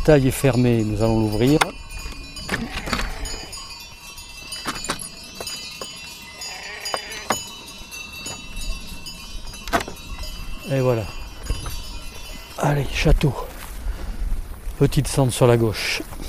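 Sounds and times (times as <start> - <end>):
speech: 0.0 - 1.8, 13.0 - 13.4, 14.8 - 16.1
sheep bells of a grazing flock clanking: 0.0 - 13.6
faint sheep bleats: 2.5 - 3.6, 6.4 - 7.4.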